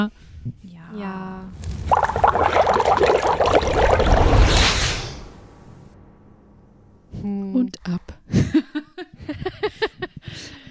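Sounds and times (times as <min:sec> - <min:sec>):
speech: 0:00.0 - 0:02.4
liquid pouring and bubbling in a cauldron: 0:01.5 - 0:04.8
hissing splash: 0:01.5 - 0:05.4
laughter: 0:08.4 - 0:10.7.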